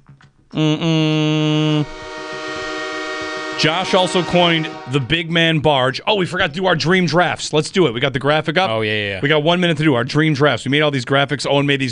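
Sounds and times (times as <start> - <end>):
speech: 0.5 - 2.0, 3.6 - 11.8
loud train horn blasts in a rich chord: 1.7 - 5.5.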